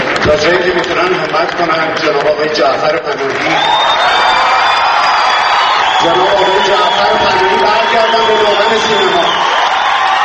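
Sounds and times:
large crowd applauding: 0.0s - 10.2s
large crowd cheering with scattered whoops: 3.3s - 10.2s
high whistle from the crowd: 3.5s - 9.9s.

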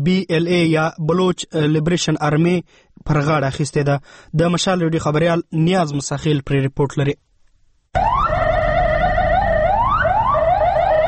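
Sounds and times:
speech: 0.0s - 7.3s
ambulance siren wailing after a deadly attack: 8.0s - 11.0s.

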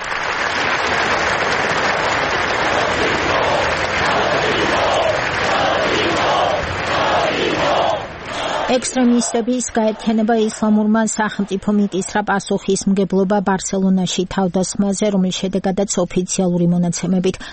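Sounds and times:
large crowd applauding at a rally in Barcelona: 0.0s - 12.8s
speech: 8.7s - 17.5s.

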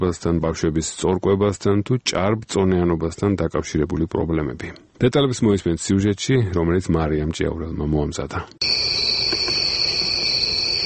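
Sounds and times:
speech: 0.0s - 8.9s
crickets chirping: 8.6s - 10.8s.

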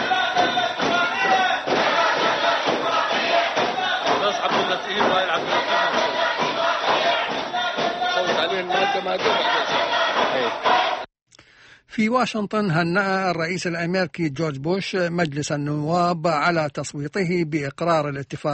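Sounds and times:
thumping beats: 0.0s - 11.0s
lawmakers chanting slogans in parliament: 0.0s - 11.1s
speech: 9.0s - 10.8s, 12.0s - 18.5s.

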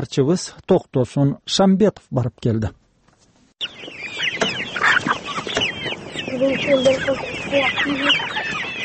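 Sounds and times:
speech: 0.0s - 2.8s, 6.4s - 8.2s
chickens clucking and squawking on a poultry farm: 3.6s - 8.8s.

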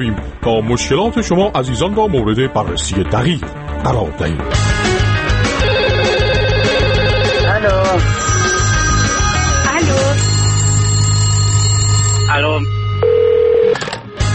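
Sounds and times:
speech: 0.0s - 4.9s, 12.3s - 12.7s
busy tonal background: 4.6s - 13.7s
answering machine beep for listener calls: 5.6s - 13.8s
telephone ringing: 5.6s - 13.9s.

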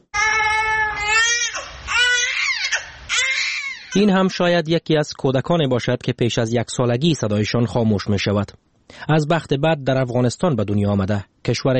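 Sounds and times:
newborn baby born in Afghanistan crying in wavering wails: 0.1s - 4.2s
speech: 3.9s - 11.7s.

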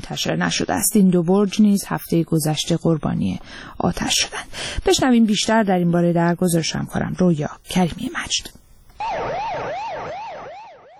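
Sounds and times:
speech: 0.1s - 9.4s
fire engine sirens in Iran during a spate of fires: 9.0s - 10.9s.

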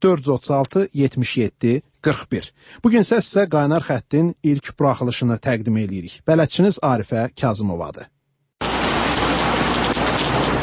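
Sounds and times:
speech: 0.0s - 8.2s
autumn rain falling in Baku: 8.6s - 10.6s.

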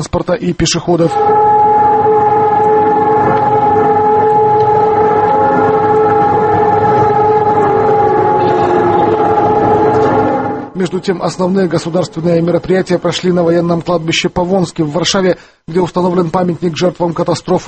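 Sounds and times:
speech: 0.0s - 1.5s, 10.8s - 17.6s
loud sustained siren across a city: 1.0s - 13.4s
faint rumble of traffic: 1.2s - 13.8s.

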